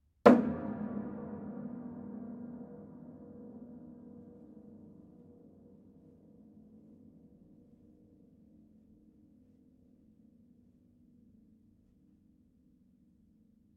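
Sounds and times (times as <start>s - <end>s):
hits on side of a piano: 0.3s - 4.7s.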